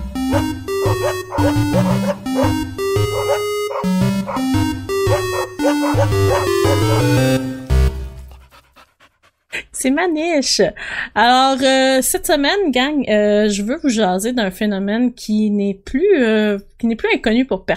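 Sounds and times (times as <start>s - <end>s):
dog barking and yipping: 0.3s - 7.2s
speech: 1.4s - 2.1s, 9.8s - 17.7s.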